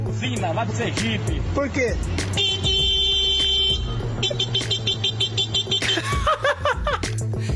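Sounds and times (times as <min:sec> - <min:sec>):
speech: 0:00.2 - 0:02.7, 0:04.2 - 0:05.0
man vocally imitating a car horn: 0:02.3 - 0:05.9
chuckling and laughter: 0:05.8 - 0:07.1.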